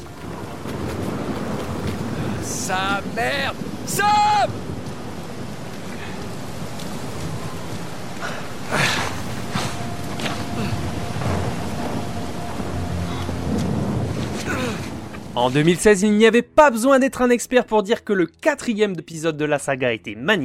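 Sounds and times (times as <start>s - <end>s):
sharp cracks and rumbling rolls of thunder: 0.0s - 15.4s
steady dense rain in a thunderstorm: 0.0s - 16.0s
speech: 2.7s - 4.7s, 15.4s - 20.4s.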